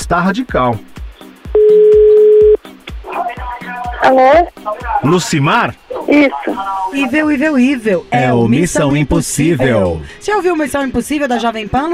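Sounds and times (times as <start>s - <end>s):
speech: 0.1s - 0.9s, 4.0s - 11.9s
steady telephone tone during dialing: 1.6s - 2.6s.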